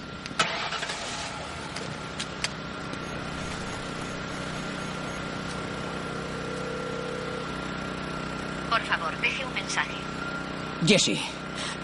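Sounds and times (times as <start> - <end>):
car engine idling: 0.3 - 10.1
car engine cranking and starting: 0.4 - 5.2
speech: 8.8 - 10.2, 10.8 - 11.7.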